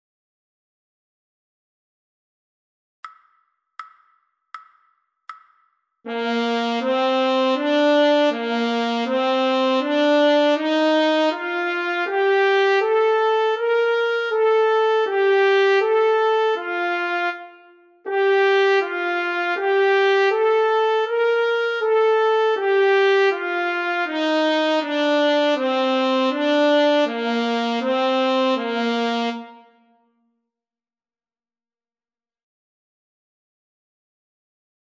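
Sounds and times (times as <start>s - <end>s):
trumpet playing a scale study: 6.1s - 29.8s.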